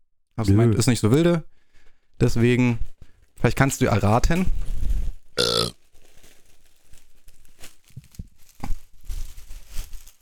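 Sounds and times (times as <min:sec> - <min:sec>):
speech: 0:00.4 - 0:01.5, 0:02.2 - 0:05.6
wrapping paper of a large gift package crinkling, rustling and scraping: 0:04.4 - 0:10.1.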